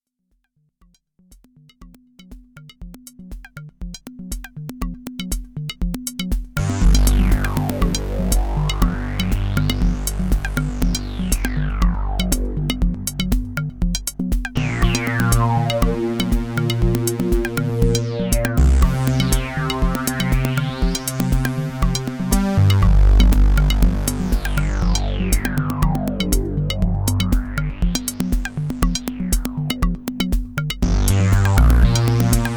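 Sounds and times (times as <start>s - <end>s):
synthesizer dual mix: 6.6s - 32.5s.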